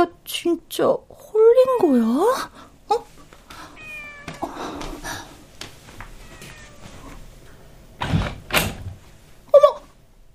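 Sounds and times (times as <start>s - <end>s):
speech: 0.0s - 3.2s
soft rustling: 3.0s - 7.4s
kitten meowing: 3.8s - 4.5s, 6.2s - 7.2s.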